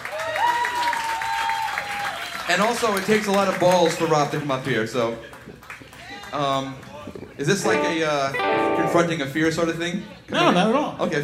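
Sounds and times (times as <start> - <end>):
live audience applause: 0.0 - 7.0
speech: 2.5 - 5.6, 6.3 - 11.2.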